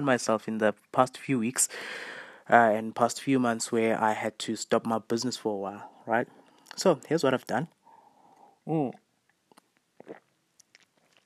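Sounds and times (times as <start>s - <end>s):
speech: 0.0s - 7.8s, 8.7s - 9.0s
person sipping a drink: 8.3s - 11.2s
lip and swallow sounds: 9.5s - 11.2s
slurping gulp: 10.0s - 11.2s.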